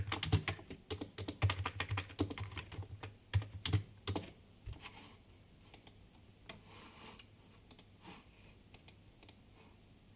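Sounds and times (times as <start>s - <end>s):
rapid typing on a keyboard: 0.0s - 4.3s.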